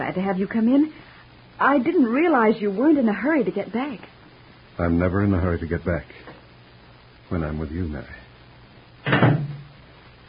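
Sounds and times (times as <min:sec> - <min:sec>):
speech: 0:00.2 - 0:04.1, 0:04.8 - 0:06.4, 0:07.3 - 0:08.2
front door closing thump: 0:09.0 - 0:09.7.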